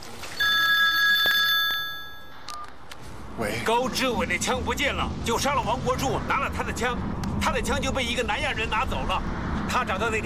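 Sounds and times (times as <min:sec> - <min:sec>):
telephone ringing with a bright electronic tone: 0:00.4 - 0:02.7
speech: 0:03.4 - 0:10.2.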